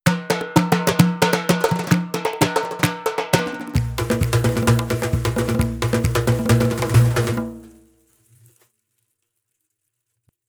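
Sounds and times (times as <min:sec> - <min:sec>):
Persian drum kit: 0:00.0 - 0:08.2.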